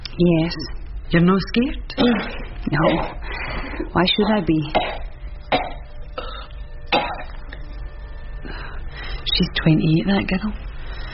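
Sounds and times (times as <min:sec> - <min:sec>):
low steady hum: 0:00.0 - 0:11.1
speech: 0:00.2 - 0:05.6, 0:09.4 - 0:10.6
woman coughing in short harsh bursts: 0:02.0 - 0:03.2, 0:04.7 - 0:07.4.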